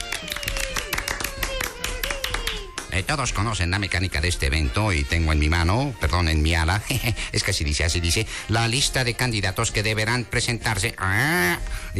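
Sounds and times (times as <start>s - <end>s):
audience applause at a contest event: 0.0s - 2.9s
speech: 3.0s - 11.9s.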